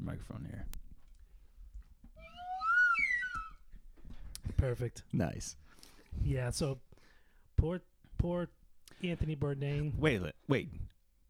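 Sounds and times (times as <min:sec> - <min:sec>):
speech: 0:00.1 - 0:00.8, 0:04.6 - 0:06.9, 0:07.6 - 0:10.9
slide whistle: 0:02.2 - 0:03.6.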